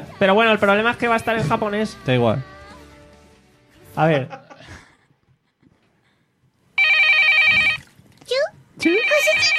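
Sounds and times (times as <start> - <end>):
speech: 0.2 - 2.5, 4.0 - 4.8, 8.8 - 9.5
telephone ringing with electronic trilling: 6.8 - 7.8, 8.8 - 9.5.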